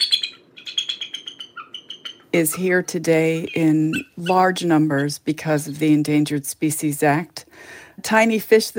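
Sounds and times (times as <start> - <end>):
bald eagle chittering call: 0.0 - 4.7
speech: 2.3 - 8.7.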